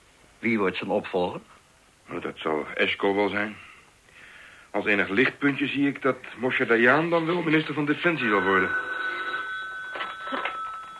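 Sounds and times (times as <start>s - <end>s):
speech: 0.4s - 3.7s, 4.7s - 9.0s
telephone ringing with a high electronic tone: 7.5s - 10.9s.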